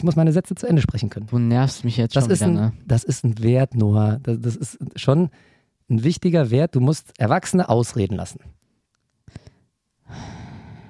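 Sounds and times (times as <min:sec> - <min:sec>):
speech: 0:00.0 - 0:08.6
breathing blown straight into a microphone: 0:05.3 - 0:05.8, 0:09.3 - 0:10.8.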